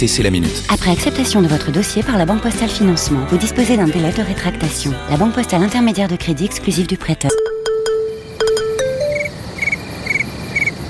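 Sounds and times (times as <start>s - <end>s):
speech: 0.0s - 7.5s
brief electronic-sounding tones: 7.3s - 9.8s
cricket chirping in short high trilled bursts: 7.3s - 10.8s.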